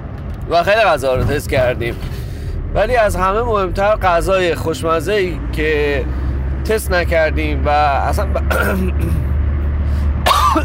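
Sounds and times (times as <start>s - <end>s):
speech: 0.5s - 9.2s
person coughing from an itchy irritated throat after eating local food: 8.5s - 9.4s, 10.2s - 10.6s.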